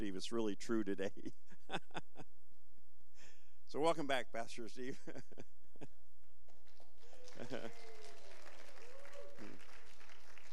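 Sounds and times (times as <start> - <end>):
speech: 0.0 - 2.0, 3.7 - 5.9, 7.4 - 8.0
laughter: 1.2 - 2.2, 7.1 - 8.1
audience applauding: 6.6 - 10.5.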